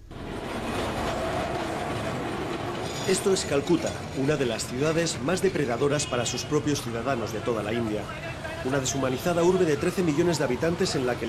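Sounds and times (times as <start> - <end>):
passing train rumbling and clattering in Calcutta, India: 0.0 - 9.9
faint metallic squeal: 2.7 - 5.0
speech: 3.1 - 11.2.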